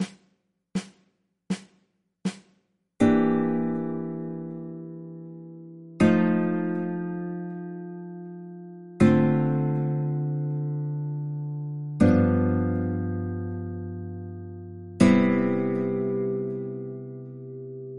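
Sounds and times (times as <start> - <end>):
chord progression: 3.0 - 17.9.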